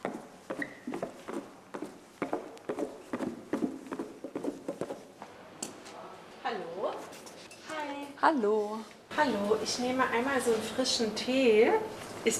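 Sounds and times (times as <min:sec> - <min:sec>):
footsteps going down a flight of stairs toward a café: 0:00.0 - 0:06.0
speech: 0:08.2 - 0:12.3.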